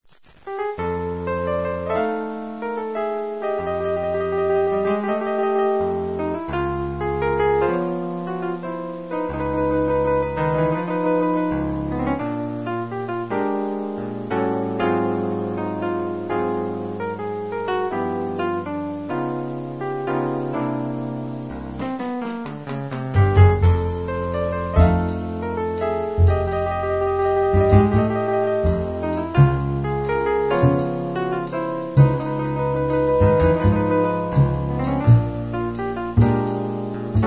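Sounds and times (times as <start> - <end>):
solo piano: 0.0 - 37.2.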